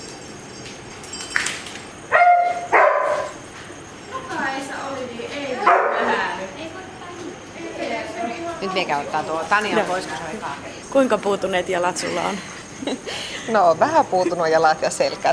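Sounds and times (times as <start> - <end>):
search dog barking at a search dog training exercise: 2.1 - 3.4, 5.6 - 6.2
search dog yipping and whining: 2.1 - 3.4
speech: 8.7 - 15.3.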